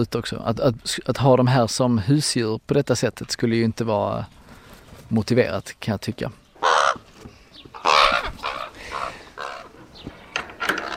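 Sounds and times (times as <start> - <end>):
speech: 0.0 - 4.4, 5.1 - 7.0
ravens croaking and squawking: 6.5 - 10.9.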